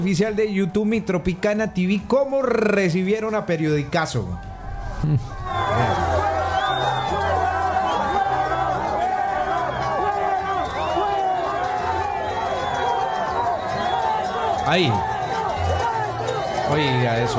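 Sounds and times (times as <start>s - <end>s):
speech: 0.0s - 6.0s, 14.7s - 15.1s, 16.7s - 17.3s
large crowd chanting and shouting together at a rally: 3.7s - 17.3s.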